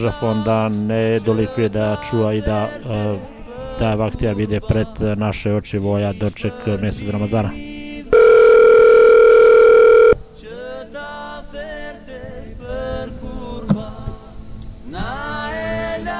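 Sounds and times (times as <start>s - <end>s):
speech: 0.0s - 7.7s
telephone ringing with a steady electronic tone: 8.1s - 10.2s.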